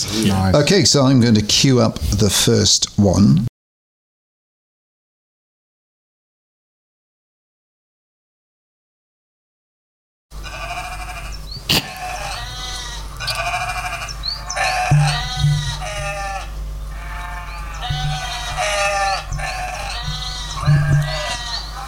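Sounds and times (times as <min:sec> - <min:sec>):
speech: 0:00.0 - 0:03.5
lambs bleating: 0:10.4 - 0:21.8.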